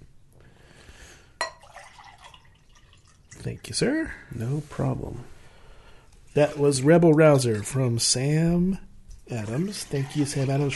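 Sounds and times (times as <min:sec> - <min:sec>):
sharp clink of glass: 0:01.4 - 0:01.9
water poured from a pitcher into a glass: 0:01.4 - 0:03.8, 0:09.6 - 0:10.7
speech: 0:03.4 - 0:05.3, 0:06.4 - 0:10.7.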